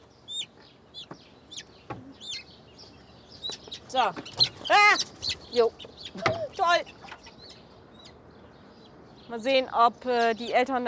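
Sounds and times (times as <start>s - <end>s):
Serama chickens clucking and chirping: 0.0s - 9.0s
speech: 4.0s - 7.0s, 9.3s - 10.8s.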